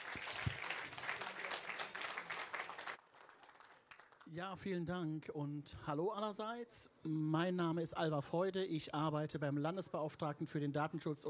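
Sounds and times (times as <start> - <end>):
crowd applauding for a speaker: 0.0 - 4.2
speech: 4.3 - 11.2.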